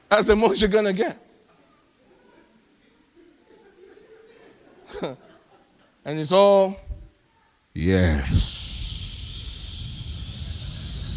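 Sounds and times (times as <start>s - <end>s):
speech: 0.1s - 1.3s, 6.1s - 6.8s, 7.8s - 8.6s
laughter: 3.1s - 6.0s
person imitating a snake's hiss: 7.8s - 11.1s.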